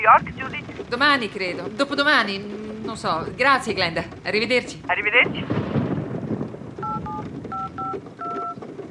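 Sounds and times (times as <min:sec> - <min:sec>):
steady rumbling windy background: 0:00.0 - 0:08.9
speech: 0:00.1 - 0:05.6
mobile phone keypad dual-tone presses: 0:06.8 - 0:08.6.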